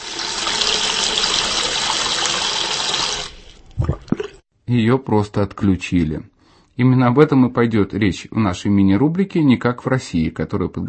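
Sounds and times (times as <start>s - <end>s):
water gushing from a tap: 0.0s - 4.3s
speech: 4.7s - 10.8s.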